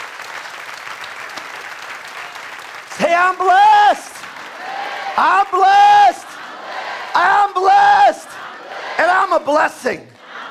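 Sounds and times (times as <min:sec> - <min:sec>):
congregation applause during a church sermon: 0:00.0 - 0:07.8
speech: 0:03.0 - 0:04.2, 0:05.2 - 0:06.3, 0:09.3 - 0:10.1.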